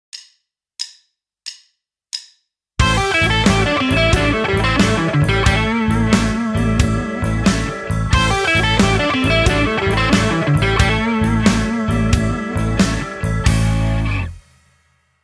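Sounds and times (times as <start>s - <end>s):
sweep picking blues lick on guitar: 2.8s - 14.4s.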